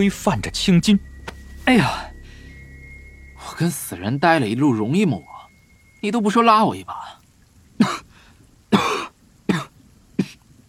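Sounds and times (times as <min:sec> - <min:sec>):
speech: 0:00.0 - 0:01.1, 0:01.7 - 0:02.1, 0:03.5 - 0:05.3, 0:06.0 - 0:07.2
man coughing: 0:08.8 - 0:10.4.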